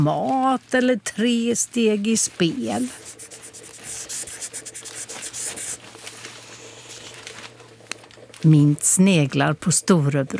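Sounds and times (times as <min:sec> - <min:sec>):
speech: 0:00.0 - 0:03.4, 0:08.4 - 0:10.3
person drawing with scratchy rubbing strokes: 0:02.6 - 0:05.9.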